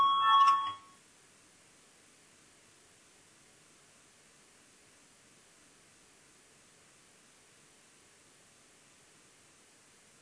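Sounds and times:
electric voting bell ringing in a parliament: 0.0 - 1.0.

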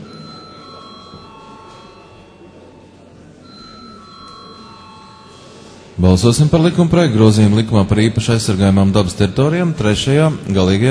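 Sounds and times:
electric bell ringing in a parliament chamber before a vote: 0.0 - 6.6
low murmur of room noise in a parliament chamber: 0.0 - 10.8
speech: 6.0 - 10.8.

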